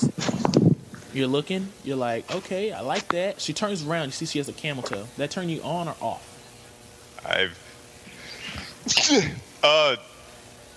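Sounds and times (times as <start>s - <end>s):
speech: 1.2s - 6.3s, 7.2s - 7.6s, 8.9s - 10.1s
sudden sharp sneeze: 8.8s - 9.5s.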